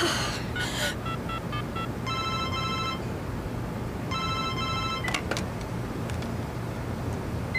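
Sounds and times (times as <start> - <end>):
steady hum of traffic noise: 0.0 - 7.5
mobile phone call ringing in electronic tone bursts: 1.0 - 3.0, 4.1 - 5.2.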